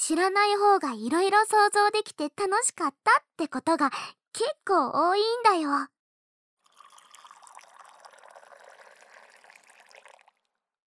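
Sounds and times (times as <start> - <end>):
speech: 0.1 - 6.0
hot water pouring for tea: 6.6 - 10.6.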